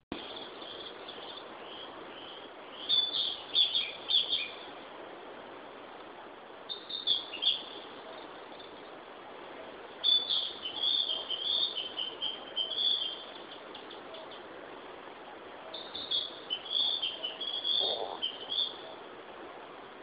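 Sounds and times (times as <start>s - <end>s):
Ficedula narcissina singing: 0.2s - 4.7s, 6.7s - 8.9s, 10.0s - 14.5s, 15.7s - 18.8s.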